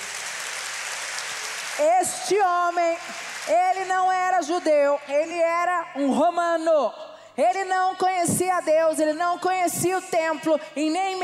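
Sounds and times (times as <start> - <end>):
dense applause from a large crowd: 0.0 - 2.2, 3.0 - 3.6
speech: 1.8 - 11.2.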